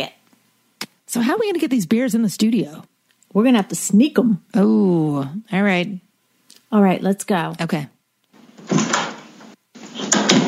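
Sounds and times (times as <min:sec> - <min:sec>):
speech: 0:01.1 - 0:06.0, 0:06.7 - 0:08.0
heavy door opening and closing: 0:08.4 - 0:10.4.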